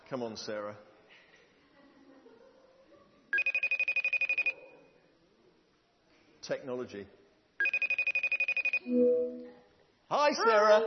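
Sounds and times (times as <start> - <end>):
speech: 0.1 - 0.9, 6.5 - 7.2, 8.8 - 10.8
outgoing phone call ringing with trilling electronic pulses: 3.4 - 4.5, 7.6 - 9.5.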